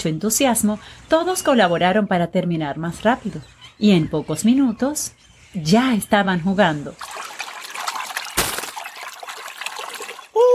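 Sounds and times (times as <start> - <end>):
speech: 0.0 - 7.3
sea water sloshing and trickling: 7.0 - 10.3.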